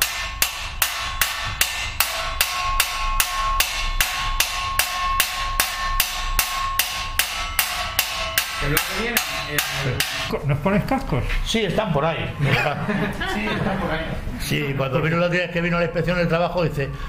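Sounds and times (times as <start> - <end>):
hammer blows on a bronze plate in a workshop: 0.0 - 10.4
speech: 8.7 - 17.0
laughter: 12.4 - 14.2.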